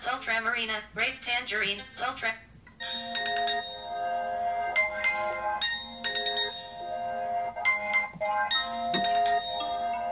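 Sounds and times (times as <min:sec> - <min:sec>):
speech: 0:00.1 - 0:03.2
phone ringtone being previewed, bright bell-like electronic melody: 0:02.8 - 0:07.0, 0:07.6 - 0:10.1.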